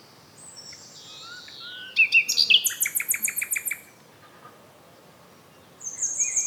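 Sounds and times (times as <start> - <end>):
common nightingale Luscinia megarhynchos singing: 0.5 - 3.9, 5.8 - 6.4.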